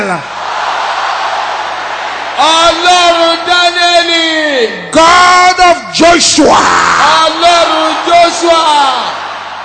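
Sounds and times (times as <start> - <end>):
audience shouting: 0.2 - 4.1, 6.4 - 9.6
speech: 4.0 - 9.2.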